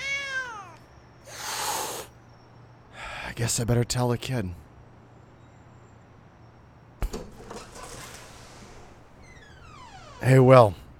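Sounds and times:
cat meowing with a sliding meow: 0.0s - 0.8s
harsh breathy burst of noise: 1.3s - 2.1s
speech: 3.4s - 4.7s, 10.3s - 10.8s.

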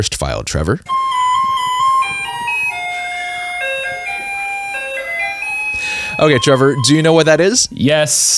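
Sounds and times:
speech: 0.0s - 1.1s, 6.2s - 8.3s
faint street noise: 0.6s - 8.3s
garbage truck on a street in Taiwan playing its melodic jingle through a loudspeaker: 0.9s - 7.7s.

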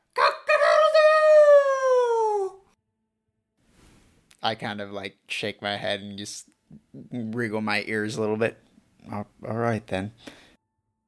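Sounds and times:
person imitating a rooster crowing: 0.2s - 2.6s
speech: 4.4s - 10.4s.

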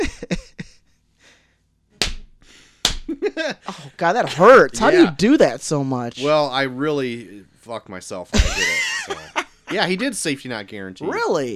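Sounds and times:
laughter: 0.0s - 0.7s, 3.1s - 5.4s, 8.1s - 10.9s
hand slapping thigh: 2.0s - 3.2s
speech: 3.4s - 11.5s.

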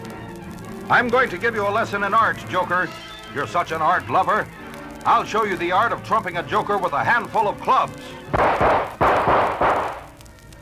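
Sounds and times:
speech: 0.9s - 9.0s
gunshots fired from a gun: 8.3s - 10.2s.

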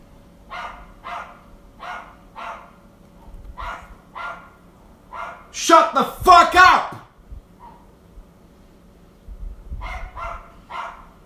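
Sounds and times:
small dog yapping and barking: 0.5s - 2.8s, 3.6s - 5.5s, 7.6s - 7.9s, 9.8s - 11.2s
speech: 5.6s - 6.2s.

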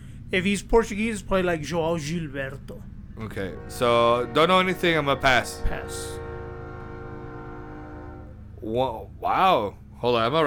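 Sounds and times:
passing train rumble: 0.0s - 10.4s
speech: 0.3s - 6.2s, 8.6s - 10.4s
train horn blast: 3.2s - 8.5s.

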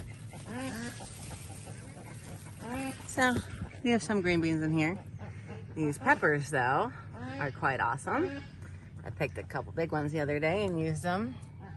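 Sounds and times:
short nasal calls of chickens charging toward a person in a vegetable garden: 0.0s - 8.6s
steady outdoor noise in a vegetable garden: 0.0s - 11.7s
speech: 3.2s - 5.1s, 5.8s - 11.5s.

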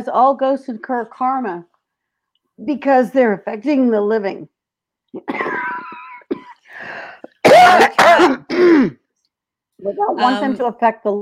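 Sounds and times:
speech: 0.0s - 1.7s, 2.6s - 5.7s, 7.6s - 9.0s, 9.8s - 11.2s
person clearing throat: 5.2s - 6.6s, 7.3s - 9.0s
person coughing with raspy hacking coughs: 5.2s - 9.0s.

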